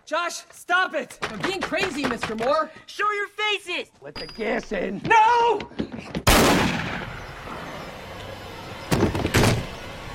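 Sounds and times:
speech: 0.1 - 6.2
gunshot fired through a front door: 6.2 - 7.1.

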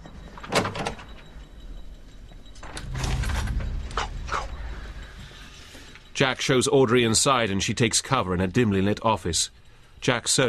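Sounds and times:
door rattling and clunking open: 0.4 - 1.1, 2.6 - 4.8
speech: 6.2 - 10.4.

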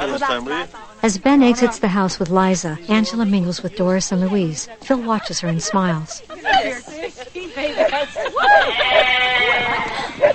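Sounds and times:
murmur of crowd chatter: 0.0 - 10.3
speech: 0.1 - 9.9
laughter: 4.4 - 10.3
sheep bleating: 8.5 - 10.3.

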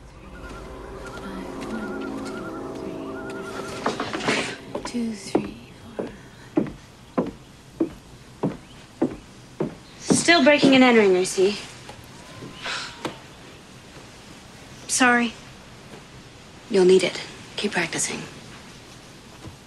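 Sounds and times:
soft tonal sound: 0.0 - 8.0
footsteps of a woman walking at a steady pace: 0.0 - 11.0
speech: 4.9 - 5.4, 10.4 - 11.7, 15.0 - 15.4, 16.7 - 18.4.

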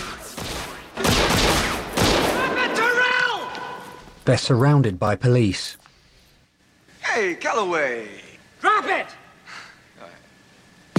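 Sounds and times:
gunshots in a film action scene on a stage: 0.0 - 4.0
speech: 4.2 - 5.8, 7.2 - 9.2.

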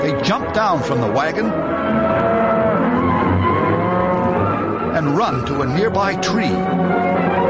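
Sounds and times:
speech: 0.1 - 2.3, 5.0 - 7.3
stampeding cattle lowing moos: 1.7 - 4.9.

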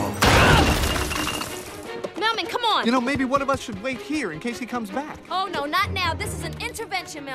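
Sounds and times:
heavy crash breaking through a zoo wall: 0.2 - 1.7
crumbling clattering debris: 0.2 - 1.9
speech: 2.7 - 7.3.

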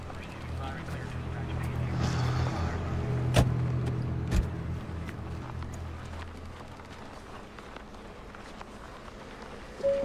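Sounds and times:
car pulling in and stopping, low engine rumble: 0.0 - 9.6.

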